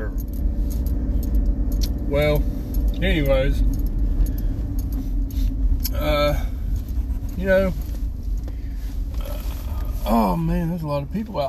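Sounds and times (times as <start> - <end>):
car engine and tire rumble on road: 0.0 - 11.4
speech: 2.1 - 3.8, 7.4 - 7.8, 10.0 - 11.4.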